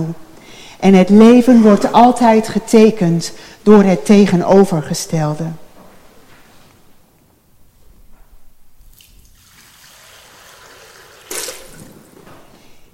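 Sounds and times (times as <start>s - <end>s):
speech: 0.0s - 0.2s, 0.8s - 5.6s
water poured during a church baptism service: 8.9s - 12.2s.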